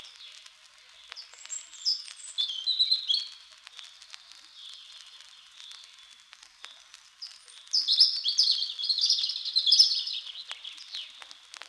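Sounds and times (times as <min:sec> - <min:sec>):
light crackling: 0:00.0 - 0:11.6
European robin singing from the top of a small spruce: 0:01.2 - 0:03.3, 0:07.2 - 0:11.2.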